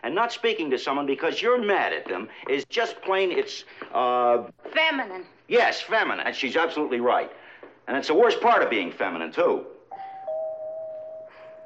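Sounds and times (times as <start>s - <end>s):
speech: 0.0s - 9.8s
doorbell ringing with a sustained electric tone: 9.9s - 11.6s.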